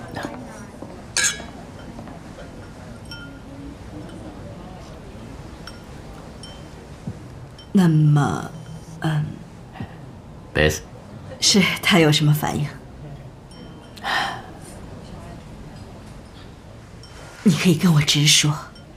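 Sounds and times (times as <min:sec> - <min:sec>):
drinking glasses clinking in a toast: 0:00.0 - 0:09.0, 0:13.2 - 0:18.9
low murmur of voices: 0:00.0 - 0:18.0.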